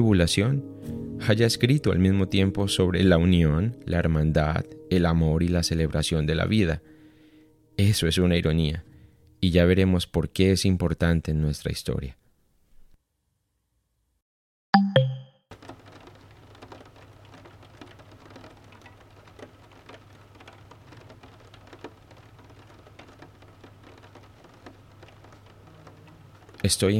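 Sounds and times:
speech: 0.0s - 6.9s, 7.8s - 12.2s, 26.7s - 26.9s
steady summer afternoon rain pattering on a surface: 15.5s - 26.9s.

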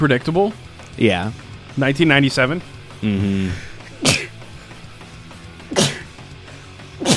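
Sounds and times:
speech: 0.0s - 4.2s
human sneezing: 3.0s - 4.5s, 5.7s - 6.2s, 7.0s - 7.1s.

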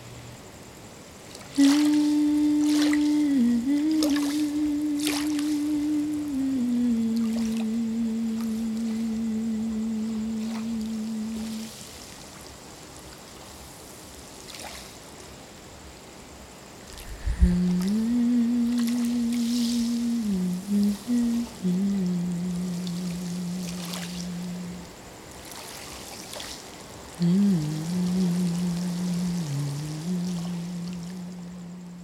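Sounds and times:
water lapping on a sandy beach shore in Uluwatu: 1.3s - 15.1s, 16.8s - 31.6s
person humming a long low note in meditation: 1.6s - 11.6s, 17.0s - 24.9s, 27.2s - 32.0s.

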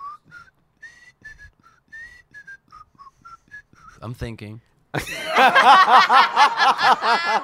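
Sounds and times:
person whistling a bright bouncy TV show theme melody: 0.0s - 4.0s
speech: 4.0s - 7.4s
laughter: 5.0s - 7.4s.

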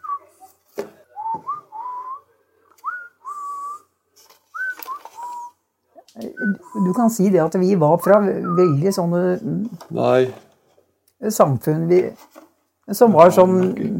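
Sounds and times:
person whistling a simple melody: 0.0s - 0.5s, 1.1s - 3.9s, 4.5s - 5.6s, 6.2s - 7.1s, 8.4s - 8.8s
speech: 6.2s - 10.4s, 11.2s - 13.9s.

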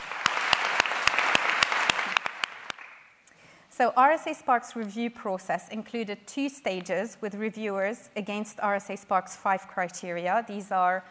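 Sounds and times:
audience applause: 0.0s - 3.0s
speech: 3.8s - 11.1s.

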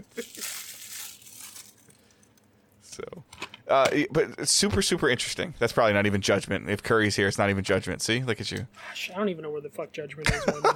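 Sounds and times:
plastic wrap torn and crinkled off a video game case: 0.0s - 2.3s
speech: 3.0s - 10.7s.

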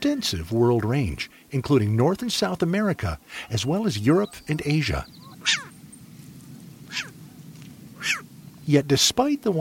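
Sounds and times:
speech: 0.0s - 5.7s, 6.9s - 7.1s, 8.1s - 9.5s
short-eared owl calls: 3.3s - 8.7s.

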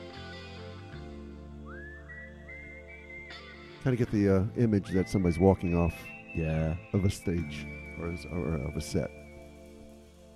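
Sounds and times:
clear melodic whistling: 0.0s - 10.3s
steady musical backing: 0.0s - 10.3s
speech: 3.8s - 9.2s.

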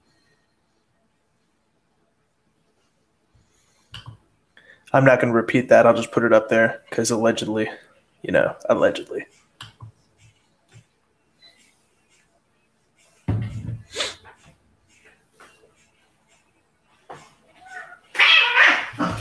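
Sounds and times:
quiet shuffling: 0.0s - 18.2s
speech: 4.9s - 9.4s
cats meowing: 17.5s - 19.2s.

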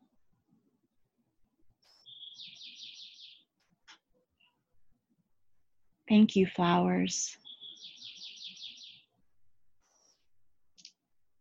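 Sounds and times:
bird outdoors singing a rapid trill and chirps: 1.9s - 3.5s, 7.4s - 9.2s
speech: 6.1s - 7.4s.

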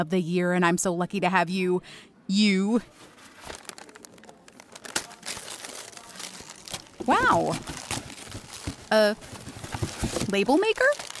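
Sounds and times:
speech: 0.0s - 3.6s, 7.0s - 7.9s, 8.9s - 9.4s, 10.3s - 11.1s
wrapping paper crinkling and rustling as a gift is unwrapped: 2.8s - 11.1s.

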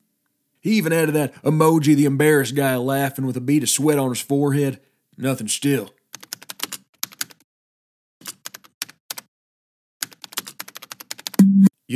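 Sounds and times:
speech: 0.6s - 6.0s
typing on a computer keyboard with clammy fingers: 6.1s - 7.4s, 8.2s - 9.3s, 10.0s - 11.4s.

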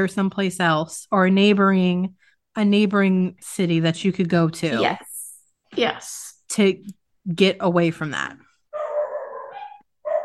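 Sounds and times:
speech: 0.0s - 5.1s, 5.7s - 8.4s
dogs barking at a front door: 8.8s - 10.2s.

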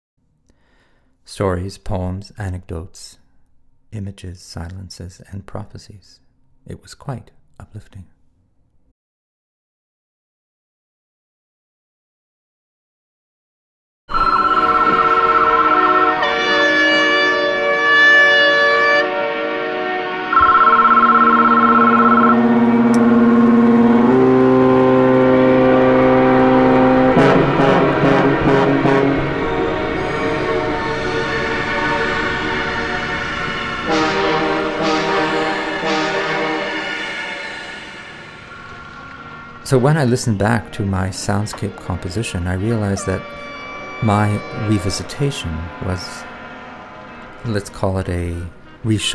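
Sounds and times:
speech: 1.3s - 3.2s, 3.9s - 8.1s, 39.7s - 46.3s, 47.4s - 49.1s
sustained horn and whistle tones: 14.1s - 47.6s
rumbling train-like noise: 19.1s - 49.1s.

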